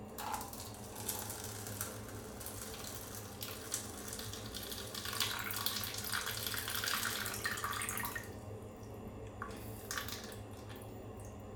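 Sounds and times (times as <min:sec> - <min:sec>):
stream of liquid trickling and splashing into a small cup: 0:00.2 - 0:08.4, 0:09.4 - 0:11.4.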